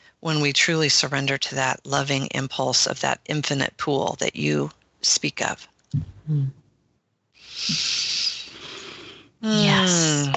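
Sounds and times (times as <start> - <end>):
speech: 0.2 - 6.6, 7.6 - 8.1, 9.4 - 10.3
two people breathing deeply: 7.4 - 9.4.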